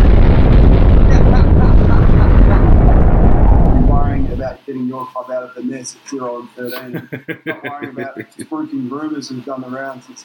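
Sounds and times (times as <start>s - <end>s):
nuclear bomb explosion roar: 0.0s - 4.6s
laughter: 1.1s - 3.3s, 6.7s - 8.5s
speech: 5.2s - 10.2s.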